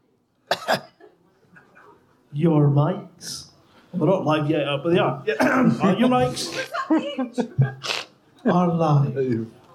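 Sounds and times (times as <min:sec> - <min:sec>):
person coughing: 0:00.5 - 0:02.0, 0:05.3 - 0:05.9
speech: 0:02.4 - 0:09.6
laughter: 0:05.6 - 0:08.1.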